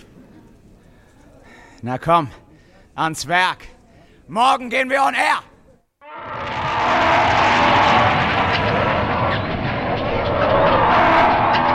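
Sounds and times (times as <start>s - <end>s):
speech: 1.8s - 2.4s, 3.0s - 5.5s
harsh roaring sound effect voicing Martians as a mating bellow: 6.0s - 11.7s.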